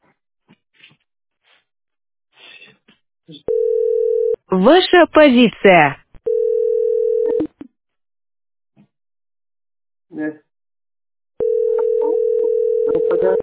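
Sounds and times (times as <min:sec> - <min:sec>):
telephone ringing tone on the line: 0:03.5 - 0:04.4, 0:06.3 - 0:07.5, 0:11.4 - 0:13.4
speech: 0:04.5 - 0:06.0.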